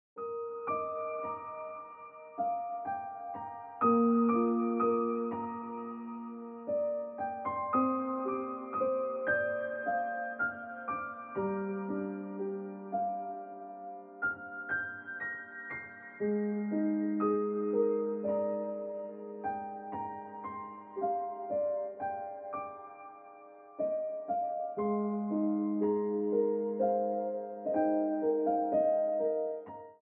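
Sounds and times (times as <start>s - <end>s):
piano ringtone music: 0.2s - 30.0s.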